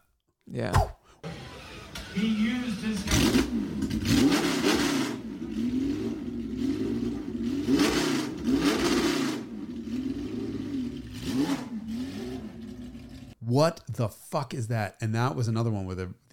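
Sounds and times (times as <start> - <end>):
speech: 0.5 - 1.0, 2.2 - 4.5, 13.6 - 16.3
car engine revving with sharp throttle blips over a steady idle: 1.4 - 13.3.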